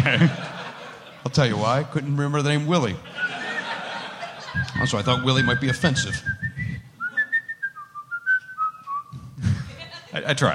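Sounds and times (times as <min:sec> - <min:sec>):
laughter: 0:00.0 - 0:01.9, 0:03.0 - 0:05.7, 0:09.4 - 0:10.3
speech: 0:00.1 - 0:00.5, 0:01.3 - 0:03.4, 0:04.6 - 0:06.4, 0:10.3 - 0:10.5
person attempting to whistle a short wavering tune: 0:03.1 - 0:03.8, 0:04.6 - 0:09.4.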